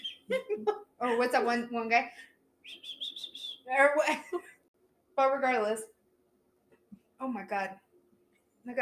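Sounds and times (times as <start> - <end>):
person whistling into a microphone: 0.0 - 0.3, 2.7 - 3.7
speech: 0.3 - 3.0, 3.7 - 4.5, 5.2 - 5.9, 7.2 - 7.8, 8.6 - 8.8.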